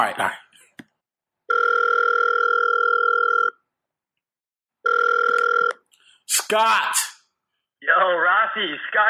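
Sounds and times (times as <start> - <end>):
speech: 0.0 - 0.4, 6.3 - 7.1, 7.8 - 9.0
telephone ringing tone: 1.5 - 3.6, 4.8 - 5.8.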